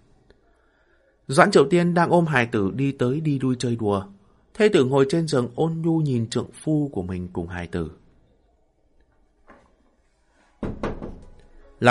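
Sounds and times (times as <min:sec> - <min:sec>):
speech: 0:01.3 - 0:08.0
knocking on a door: 0:10.6 - 0:11.3.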